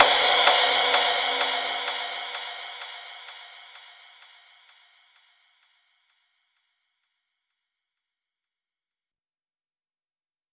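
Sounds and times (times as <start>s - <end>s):
crash cymbal mix at 128 BPM: 0.0s - 5.3s.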